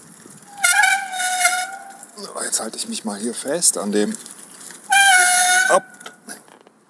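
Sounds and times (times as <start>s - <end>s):
bicycle brake squealing in a high-pitched tone: 0.4s - 2.2s, 4.9s - 6.2s
speech: 2.2s - 4.4s.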